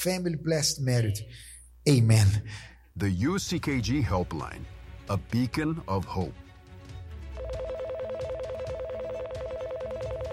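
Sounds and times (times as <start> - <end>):
speech: 0.0 - 6.4
faint music bed: 0.0 - 10.3
electronic telephone dialing tones in a helpline advertisement: 7.4 - 10.3.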